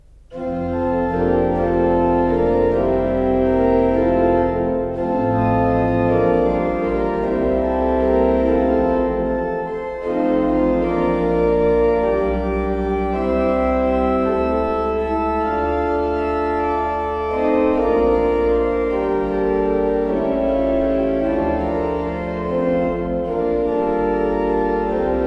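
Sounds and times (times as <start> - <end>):
used organ: 0.1 - 25.2.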